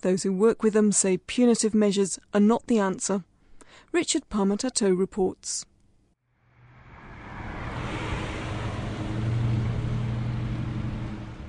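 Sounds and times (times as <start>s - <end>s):
speech: 0.0s - 5.7s
traffic of many vehicles crossing a bridge on the outskirts of Whangarei: 6.3s - 11.4s.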